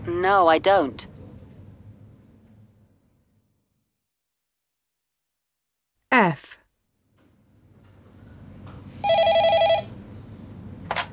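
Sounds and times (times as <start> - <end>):
speech: 0.2 - 1.1
telephone ringing with an electronic trill: 9.0 - 10.0.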